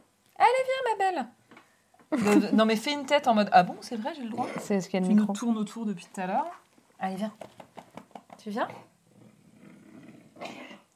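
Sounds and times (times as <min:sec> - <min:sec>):
speech: 0:00.6 - 0:01.4, 0:02.1 - 0:07.8, 0:08.4 - 0:08.9
pet coughing with rasping hacking: 0:04.3 - 0:04.8.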